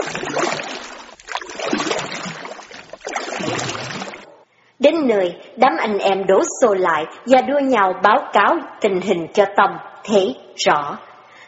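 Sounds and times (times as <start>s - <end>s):
water churning as a small boat is poled through seasonal floodwater: 0.0s - 4.4s
speech: 4.9s - 11.1s.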